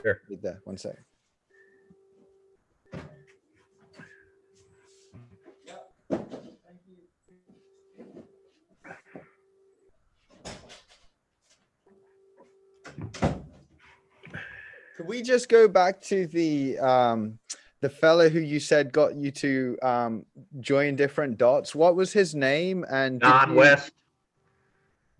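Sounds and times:
speech: 0.0 - 1.2, 15.0 - 24.0
door opening and shutting: 12.9 - 13.6
faint indistinct voices in the room: 23.2 - 23.9.

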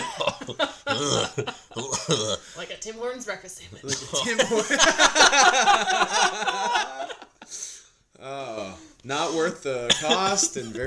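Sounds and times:
person coughing with throaty hacking coughs: 0.0 - 2.6, 9.9 - 10.8
laughter: 0.0 - 2.8, 3.7 - 7.7, 8.4 - 10.8
speech: 0.5 - 7.2, 8.2 - 10.8.

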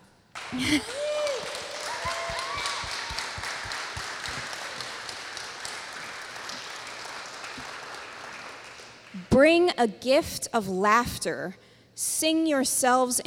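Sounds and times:
large standing crowd applauding after a psalm reading: 0.3 - 9.3
speech: 0.5 - 1.0, 9.4 - 13.2.

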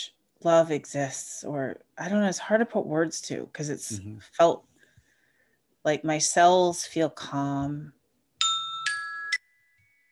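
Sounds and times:
speech: 0.0 - 4.7, 5.8 - 8.0
bell chime: 8.4 - 10.1.

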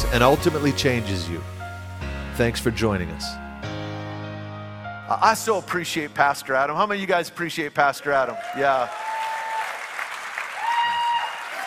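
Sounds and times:
speech: 0.1 - 1.6, 2.4 - 3.4, 5.1 - 9.0
roomful of people at a church in Ankeny Iowa clapping: 8.1 - 11.6.

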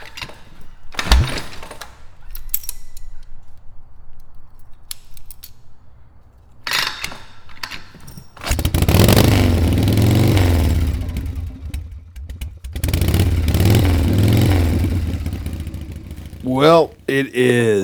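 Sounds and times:
vintage motorcycle engine revving: 8.5 - 17.1
speech: 16.6 - 17.8.

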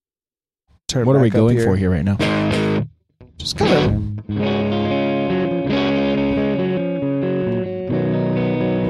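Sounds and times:
speech: 0.9 - 2.7, 3.4 - 4.8
electric guitar through a Twin amp model on a Quad Cortex playing sustained chords: 2.2 - 8.8.

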